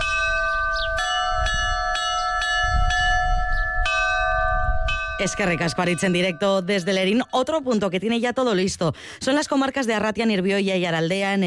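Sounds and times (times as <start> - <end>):
church bells in Navarra rung by bell-ringers to announce an eclipse: 0.0 - 7.7
speech: 5.2 - 11.4.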